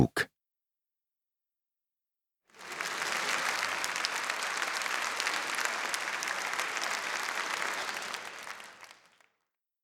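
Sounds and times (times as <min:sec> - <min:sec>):
crowd applauding: 0:02.5 - 0:09.4.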